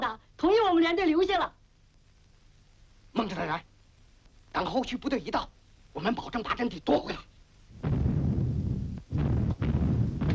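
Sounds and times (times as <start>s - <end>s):
speech: 0.0s - 1.6s, 3.1s - 3.7s, 4.6s - 8.0s
artillery shelling explosions as enemy guns bombard a mountain position in wartime: 7.8s - 10.3s.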